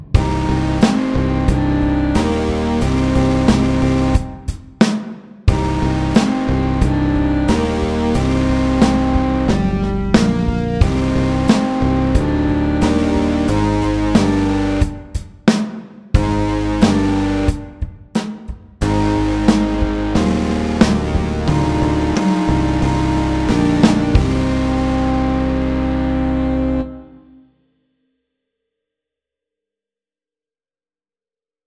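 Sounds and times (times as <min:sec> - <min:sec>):
slow metal rock music: 0:00.2 - 0:04.5, 0:05.5 - 0:15.2, 0:16.2 - 0:17.7, 0:18.8 - 0:27.0.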